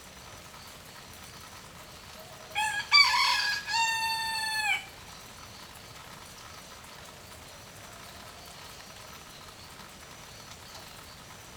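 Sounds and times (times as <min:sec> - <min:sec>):
rooster crowing in light rain: 0:02.5 - 0:04.9.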